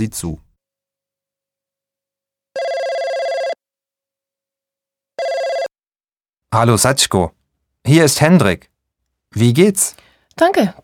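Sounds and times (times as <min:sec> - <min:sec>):
speech: 0:00.0 - 0:00.4, 0:06.5 - 0:08.7, 0:09.3 - 0:10.8
telephone ringing with buzzing electronic tone for an incoming call: 0:02.5 - 0:03.6, 0:05.2 - 0:05.7.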